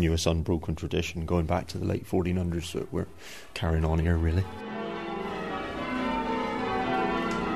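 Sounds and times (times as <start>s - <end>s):
speech: 0.0s - 4.7s
church bells ringing at church in Chagford: 4.2s - 7.5s.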